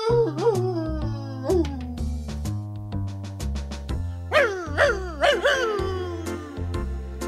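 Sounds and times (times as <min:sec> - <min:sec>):
person imitating a dog howling like a jackal: 0:00.0 - 0:02.0, 0:04.3 - 0:06.5
musical accompaniment with sustained low notes: 0:00.0 - 0:07.2.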